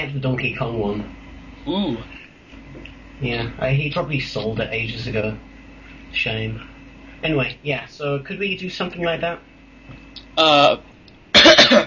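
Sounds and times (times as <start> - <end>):
speech: 0.0 - 5.5, 6.1 - 10.9
harsh coughs after eating something spicy: 11.3 - 11.8.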